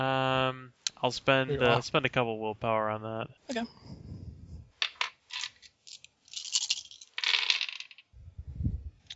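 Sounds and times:
speech: 1.0s - 4.0s
four dice rattling and clattering: 4.8s - 8.1s.

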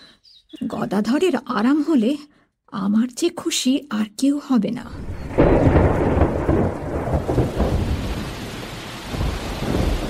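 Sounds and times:
speech: 0.6s - 6.0s
thunder rumbling: 4.8s - 10.0s
heavy downpour over hillside trees: 4.9s - 10.0s.

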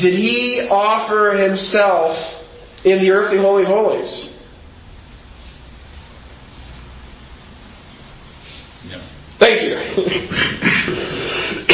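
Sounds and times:
speech: 0.0s - 4.3s, 8.8s - 11.7s
person coughing: 9.8s - 11.7s.

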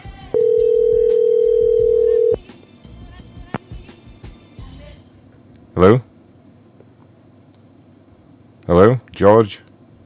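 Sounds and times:
telephone ringing tone of an outgoing call to a cell phone: 0.4s - 2.4s
speech: 5.8s - 6.1s, 8.7s - 9.7s.

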